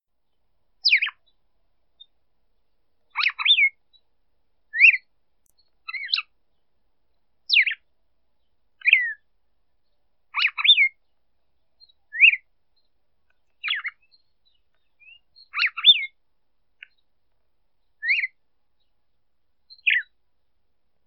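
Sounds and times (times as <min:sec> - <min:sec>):
female red-cowled cardinal singing to excite a male: 0:00.8 - 0:01.4, 0:02.0 - 0:04.1, 0:04.7 - 0:16.2, 0:17.8 - 0:19.0, 0:19.7 - 0:20.5.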